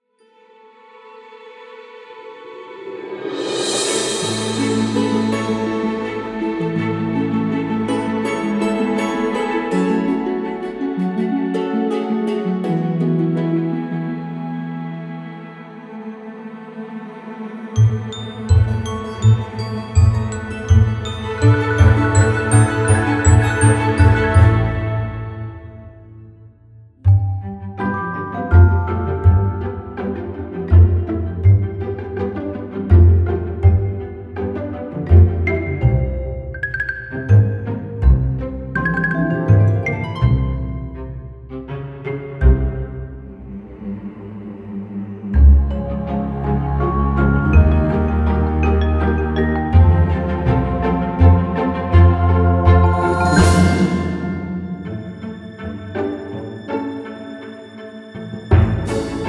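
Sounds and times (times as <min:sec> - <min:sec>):
uplifting playful fantasy music: 0:00.2 - 0:59.2.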